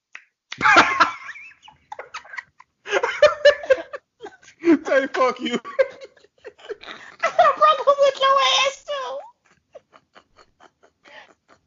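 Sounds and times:
person mimicking wet smacking tongue chewing noises: 0.1s - 0.7s
speech: 0.6s - 0.8s, 5.0s - 5.9s
laughter: 0.6s - 8.1s, 9.2s - 11.6s.

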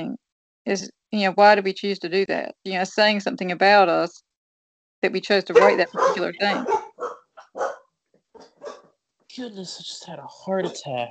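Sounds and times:
speech: 0.0s - 4.3s, 5.0s - 7.7s, 9.4s - 11.0s
dogs barking at a deer outside a house: 5.5s - 8.9s.

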